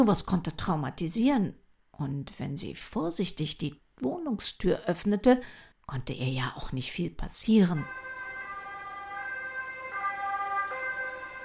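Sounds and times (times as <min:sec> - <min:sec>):
speech: 0:00.0 - 0:08.0
ambulance and police sirens wailing: 0:07.8 - 0:11.4
faint road rumble: 0:07.9 - 0:11.4.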